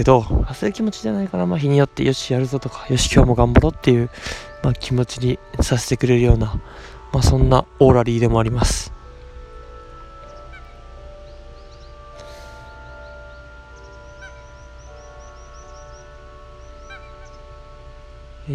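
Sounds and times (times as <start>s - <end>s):
speech: 0.0s - 9.0s
steady outdoor ambient noise: 0.0s - 18.5s
ducks quacking on a river in Goto Nagasaki Prefecture Japan: 13.0s - 15.9s, 16.6s - 17.5s.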